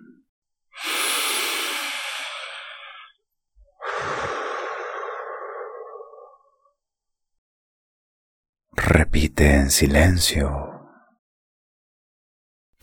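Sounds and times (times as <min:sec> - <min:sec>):
slow deep human breathing during a guided meditation: 0:00.8 - 0:06.8
speech: 0:08.9 - 0:10.7.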